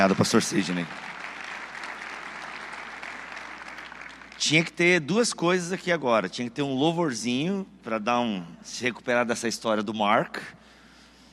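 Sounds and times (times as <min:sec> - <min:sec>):
speech: 0:00.0 - 0:01.2, 0:04.5 - 0:10.7
audience applause: 0:00.0 - 0:04.6.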